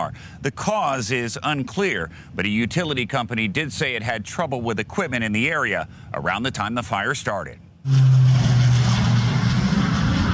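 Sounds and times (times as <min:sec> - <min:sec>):
speech: 0:00.1 - 0:08.2
firefighting planes and helicopters flying overhead: 0:07.8 - 0:10.3.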